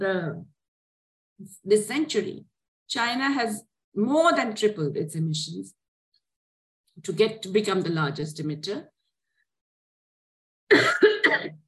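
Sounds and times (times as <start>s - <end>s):
speech: 0.0s - 0.6s, 1.4s - 5.8s, 7.0s - 8.9s
person coughing: 10.7s - 11.6s.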